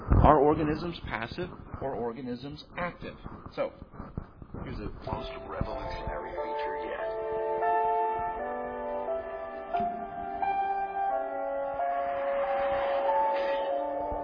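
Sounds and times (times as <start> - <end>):
speech: 0.3 - 7.2
car commercial soundtrack, melodic music with bell-like chiming notes: 7.0 - 14.2.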